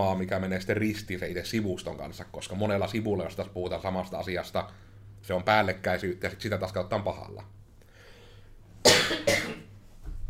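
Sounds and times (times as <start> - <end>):
speech: 0.0 - 7.6, 9.1 - 9.5
harsh coughs: 8.8 - 9.8.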